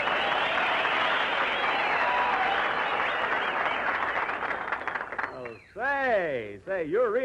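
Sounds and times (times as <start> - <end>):
studio audience applauding: 0.0 - 5.7
speech: 6.7 - 7.2.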